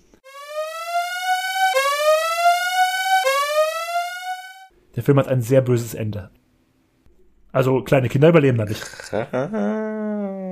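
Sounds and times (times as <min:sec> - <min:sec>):
loud siren used as a spoiler alarm sound effect: 0:00.3 - 0:04.7
speech: 0:05.0 - 0:06.4, 0:07.6 - 0:10.1.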